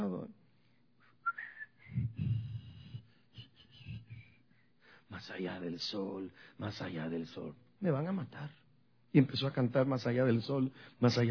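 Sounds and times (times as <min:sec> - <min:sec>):
whistled hymn-like melody: 0:01.2 - 0:01.9
speech: 0:05.2 - 0:11.2.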